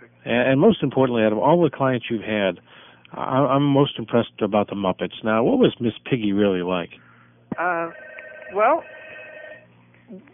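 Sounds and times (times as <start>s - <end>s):
low hum: 0.0s - 7.2s
speech: 0.2s - 9.0s
telephone ringing with electronic tones: 7.6s - 9.7s.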